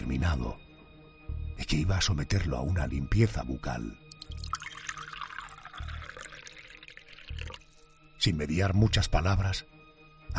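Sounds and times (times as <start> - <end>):
speech: 0.2 - 0.7, 1.6 - 4.0, 8.2 - 9.7
water pouring: 4.1 - 8.0.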